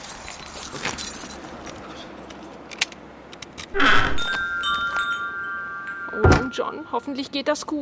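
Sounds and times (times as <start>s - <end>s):
keys jangling: 0.0s - 2.6s
thin ringing tone: 4.1s - 7.4s
speech: 6.6s - 7.8s.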